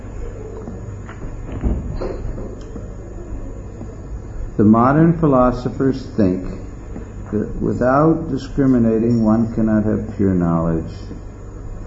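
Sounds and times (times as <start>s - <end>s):
door being opened with clunks: 1.5s - 2.6s
speech: 4.6s - 6.6s, 7.3s - 11.3s.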